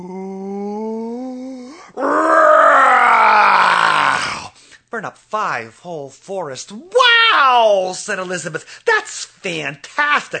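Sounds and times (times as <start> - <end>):
human voice groaning in imitation of a dragon: 0.0 - 4.6
human voice roaring in imitation of a dragon's fiery breath: 0.0 - 4.6
speech: 5.0 - 10.3.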